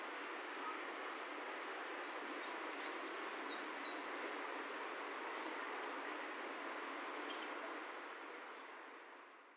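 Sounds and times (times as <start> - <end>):
constant low hiss: 0.0 - 9.5
Sakhalin leaf warbler song with high thin chirping notes: 1.2 - 7.3.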